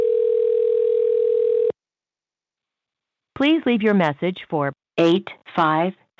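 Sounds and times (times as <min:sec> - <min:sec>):
mid-pitched electronic telephone ringing tone on outgoing call to a company: 0:00.0 - 0:01.8
speech: 0:03.4 - 0:06.1.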